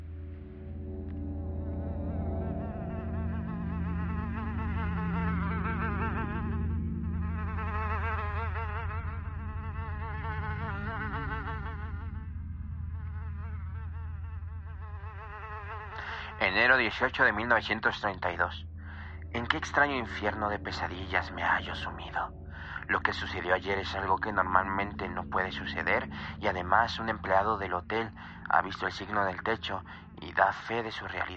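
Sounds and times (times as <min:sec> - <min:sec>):
fly buzzing: 0:01.8 - 0:16.4
speech: 0:16.5 - 0:18.7, 0:19.4 - 0:31.3.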